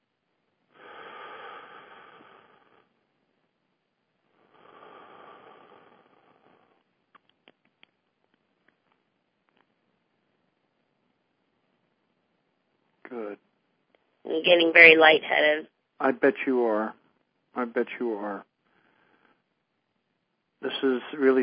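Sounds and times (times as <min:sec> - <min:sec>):
deep breaths in during a spiritual breathing exercise: 0:00.7 - 0:02.9, 0:04.4 - 0:06.8, 0:18.6 - 0:19.5
faint clicks: 0:07.1 - 0:09.8
speech: 0:14.3 - 0:17.0, 0:17.6 - 0:18.5, 0:20.6 - 0:21.4.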